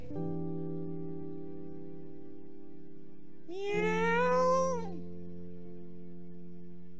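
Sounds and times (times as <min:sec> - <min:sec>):
high drawn-out kitten-like meow: 0:03.5 - 0:05.0.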